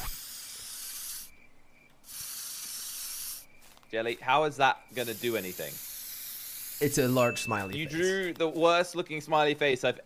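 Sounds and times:
spray can hissing: 0.0s - 1.3s, 2.0s - 3.8s, 4.9s - 7.8s
speech: 3.9s - 5.9s, 6.8s - 10.0s.

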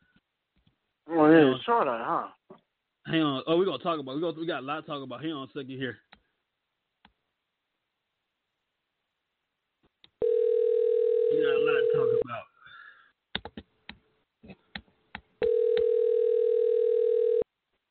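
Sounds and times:
speech: 1.2s - 2.4s, 3.1s - 6.1s
telephone ringing with electronic tone: 10.2s - 12.2s, 15.4s - 17.4s.

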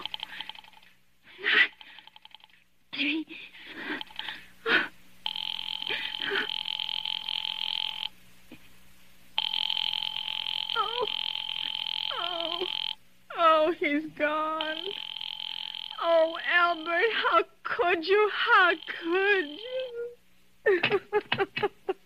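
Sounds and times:
telephone ringing on the line after an operator places a call: 0.0s - 2.6s, 3.7s - 4.4s, 5.2s - 8.2s, 9.4s - 13.0s, 14.5s - 17.4s, 18.0s - 20.2s
people talking: 10.8s - 11.1s, 12.1s - 12.7s, 13.3s - 14.9s, 16.0s - 21.8s.

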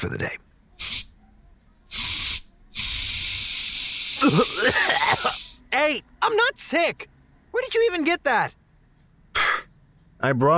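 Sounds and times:
speech: 0.0s - 0.9s, 4.2s - 8.6s, 10.2s - 10.5s
aerosol cleaning spray hissing: 0.8s - 1.1s, 1.9s - 5.6s.

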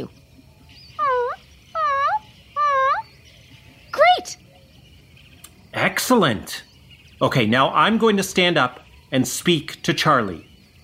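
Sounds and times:
person imitating a puppy's soft whimper: 1.0s - 3.0s
speech: 6.1s - 10.5s.

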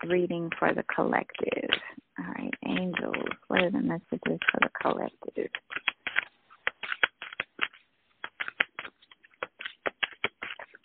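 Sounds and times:
speech: 0.0s - 5.8s
tarot cards shuffled during a reading and scattering everywhere: 2.5s - 10.8s.

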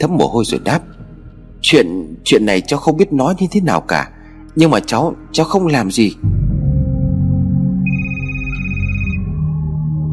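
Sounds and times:
speech: 0.0s - 1.0s, 1.6s - 6.4s
dense droning musical background: 0.0s - 10.1s
electronic phone ring: 7.8s - 9.5s.

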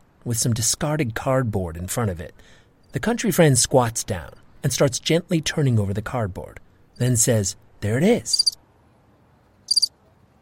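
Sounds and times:
speech: 0.2s - 8.6s
cricket giving a high-pitched chirp: 8.3s - 8.6s, 9.7s - 9.9s.

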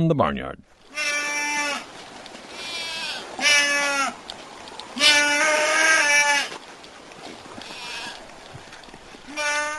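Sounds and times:
speech: 0.0s - 1.1s, 5.0s - 5.7s
Nubian goats bleating in a barnyard: 0.9s - 1.9s, 2.5s - 4.2s, 5.0s - 6.6s, 7.6s - 8.3s, 9.3s - 9.7s.

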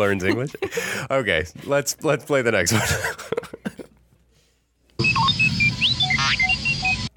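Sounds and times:
speech: 0.0s - 3.3s
robotic droid beeping and whistling: 5.0s - 7.1s.

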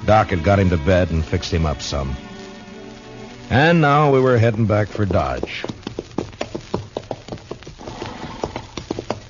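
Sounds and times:
speech: 0.1s - 2.3s, 3.5s - 5.8s
horse hooves stomping on dry dusty ground in Kansas: 3.1s - 9.2s.

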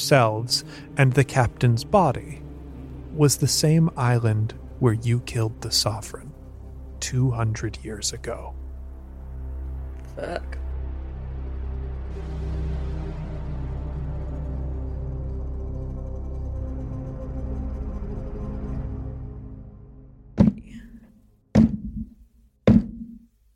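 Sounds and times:
low steady droning background: 0.0s - 23.3s
speech: 0.1s - 2.4s, 3.2s - 6.3s, 7.0s - 8.6s, 10.2s - 10.6s
firm knocking on a door: 20.4s - 20.7s, 21.6s - 22.1s, 22.7s - 23.2s.

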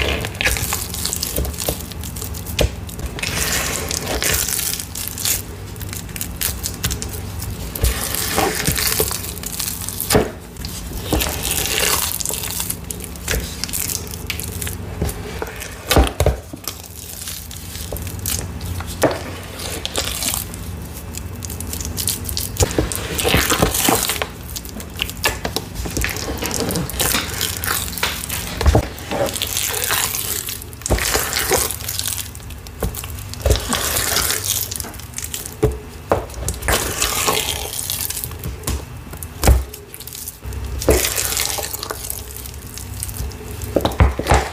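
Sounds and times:
low steady hum: 0.0s - 44.5s
purple cornstarch paste squelching and crackling under hand mixing: 0.0s - 44.5s
sticky crunches of cornstarch paste: 0.0s - 44.5s.

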